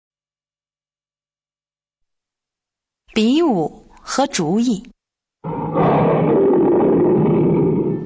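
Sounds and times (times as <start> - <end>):
speech: 3.1 - 5.6
tiger roaring: 5.4 - 8.0.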